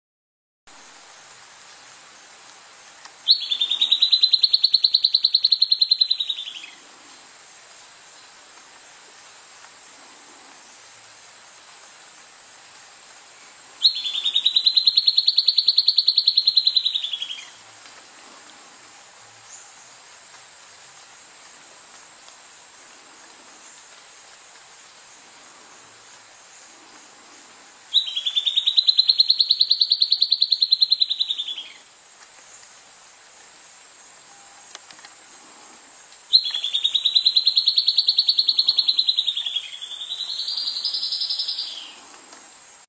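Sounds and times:
Amazonian flycatcher singing by a stream: 0:03.2 - 0:06.8, 0:13.8 - 0:17.6, 0:27.9 - 0:31.9, 0:36.3 - 0:42.1.

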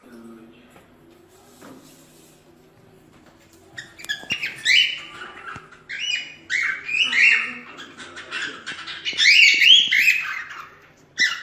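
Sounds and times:
lutino cockatiel singing: 0:03.7 - 0:11.4.

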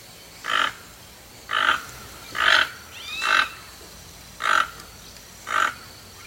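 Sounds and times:
Toco toucan calling with rough grating croaks: 0:00.4 - 0:06.2.

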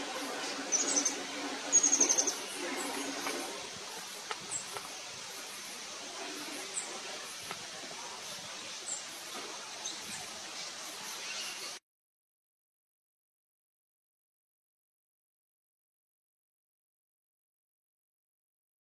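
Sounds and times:
green-vested hummingbird singing: 0:00.1 - 0:11.8.

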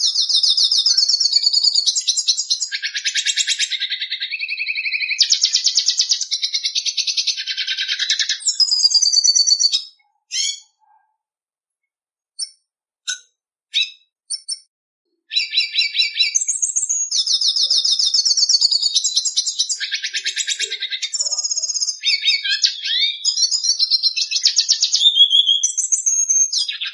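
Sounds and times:
red siskin singing with twittering phrases, chirps, trills and buzzy notes: 0:00.0 - 0:11.0, 0:12.4 - 0:14.7, 0:15.3 - 0:26.9.

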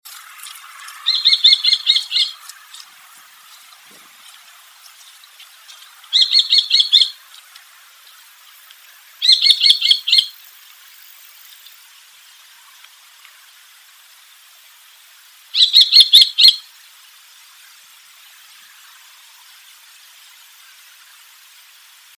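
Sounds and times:
common kestrel calling: 0:00.4 - 0:07.4, 0:09.2 - 0:10.4, 0:15.5 - 0:16.7.

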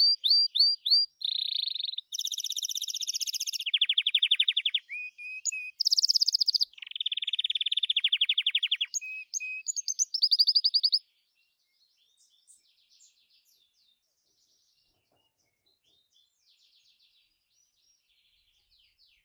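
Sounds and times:
Gloster canary singing: 0:00.0 - 0:11.0.

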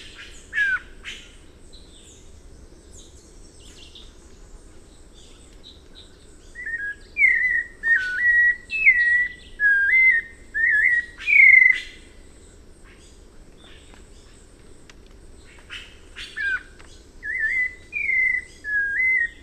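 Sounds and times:
White-necked Thrush song: 0:06.6 - 0:12.0, 0:16.2 - 0:19.4.

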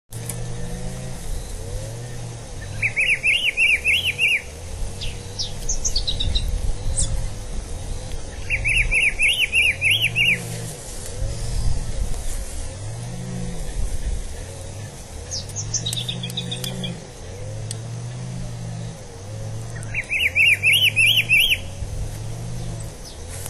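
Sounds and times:
pitiguari singing: 0:00.2 - 0:23.4.

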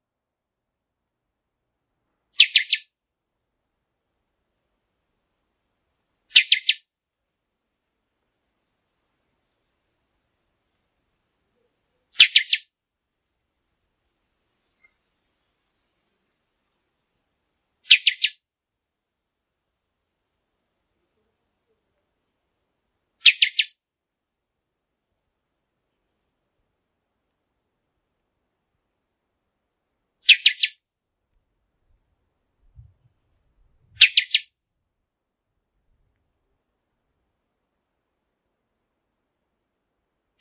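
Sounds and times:
Pixoxó bird singing: 0:02.4 - 0:03.0, 0:06.3 - 0:07.0, 0:12.0 - 0:12.7, 0:17.9 - 0:18.5, 0:23.2 - 0:23.8, 0:30.3 - 0:30.9, 0:34.0 - 0:34.6.

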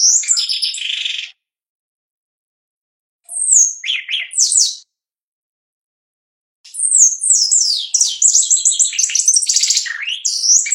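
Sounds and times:
Shiny cowbird singing high whistles and rattly trills: 0:00.0 - 0:01.4, 0:03.3 - 0:04.9, 0:06.7 - 0:10.7.

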